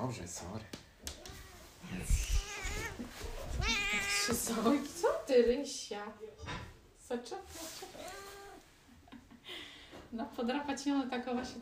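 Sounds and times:
faint room rustling: 0.0 - 11.6
speech: 0.1 - 0.8, 1.8 - 8.4, 9.5 - 11.6
cat meowing: 1.2 - 4.5, 8.0 - 8.6.

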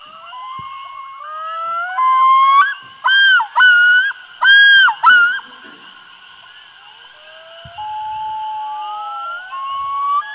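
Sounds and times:
male loon territorial yodel: 0.0 - 5.6, 7.2 - 10.3
several loons calling: 0.0 - 10.3.

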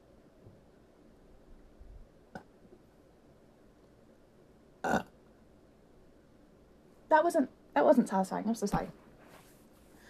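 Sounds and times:
loud burp: 4.8 - 5.1
throaty gulp: 4.8 - 5.1
speech: 7.1 - 9.0.

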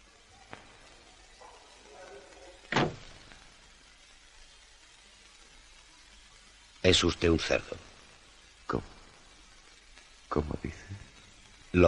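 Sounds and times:
quiet noise: 0.0 - 11.8
door closing in a hospital patient's room: 2.7 - 3.1
speech: 6.9 - 7.9, 8.7 - 9.0, 10.3 - 10.9.

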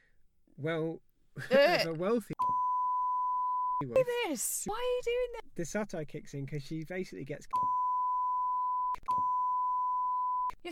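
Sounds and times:
speech: 0.6 - 2.4, 3.8 - 7.7
censor beep over a spoken spoiler: 2.4 - 4.2, 7.6 - 10.6.

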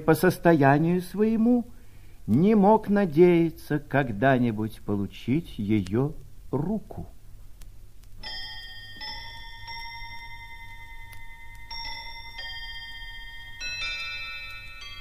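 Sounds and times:
speech: 0.0 - 7.2
low steady hum: 0.0 - 14.9
table clock chiming the quarter hour: 8.2 - 14.9.

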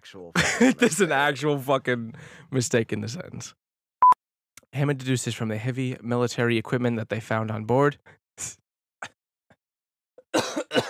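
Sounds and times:
speech: 0.1 - 3.6, 4.7 - 9.2
laughter: 0.4 - 1.4
harsh coughing: 10.2 - 10.8.

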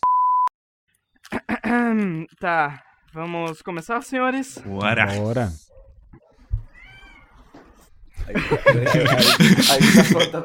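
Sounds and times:
speech: 1.7 - 5.7, 8.3 - 10.4
cat meowing: 6.6 - 7.5
laughter: 8.2 - 10.4.

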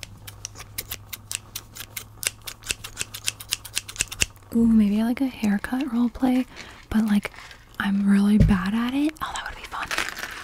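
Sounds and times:
scissors snipping to cut a necklace free: 0.0 - 4.4
faint steady hum: 0.0 - 10.4
speech: 4.5 - 9.4.

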